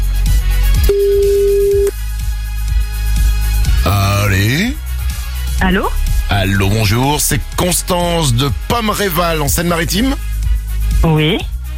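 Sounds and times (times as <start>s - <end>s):
pulsing rhythmic music bed: 0.0s - 11.7s
telephone ringing with a single steady electronic tone: 0.9s - 1.9s
speech: 5.7s - 10.3s, 11.0s - 11.5s.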